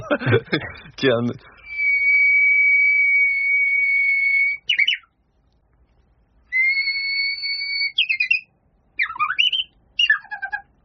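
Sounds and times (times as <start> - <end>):
laughter: 0.0 - 1.0
speech: 0.1 - 1.5
person whistling Japanese bush warbler song: 1.6 - 5.1, 6.5 - 10.2.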